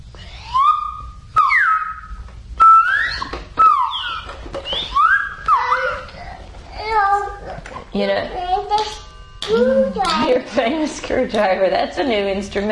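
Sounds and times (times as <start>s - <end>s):
whistle playing short sliding tones: 0.3s - 6.0s
speech: 8.0s - 8.9s, 9.5s - 12.6s.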